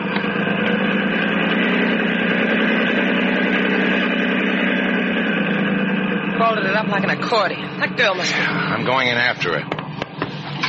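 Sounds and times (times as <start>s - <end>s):
motorboat engine idling: 0.0s - 10.6s
speech: 6.6s - 9.7s.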